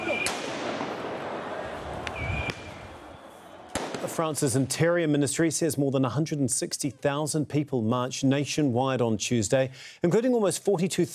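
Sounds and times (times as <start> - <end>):
booming pops of tear gas canisters fired by police: 0.0 - 2.9, 3.7 - 4.3
speech: 4.2 - 11.1.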